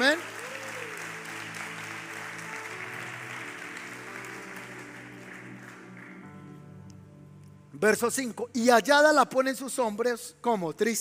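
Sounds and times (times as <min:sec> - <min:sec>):
audience applauding: 0:00.0 - 0:06.7
speech: 0:07.8 - 0:11.0.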